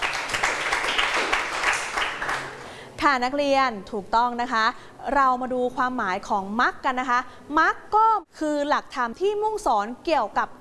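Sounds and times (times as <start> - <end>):
students clapping their hands in a classroom: 0.0 - 2.8
speech: 3.0 - 10.5.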